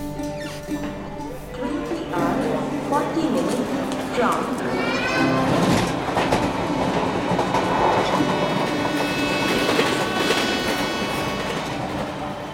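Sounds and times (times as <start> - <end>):
train rumbling along the rails: 0.9 - 12.5.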